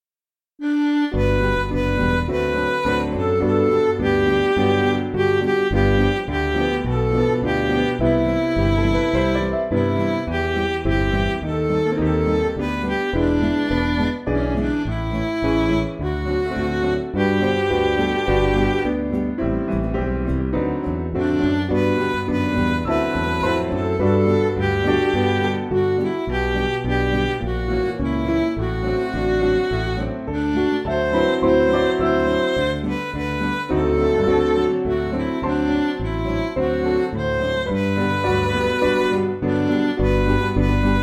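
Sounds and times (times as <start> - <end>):
MIDI gospel song: 0.6 - 41.0.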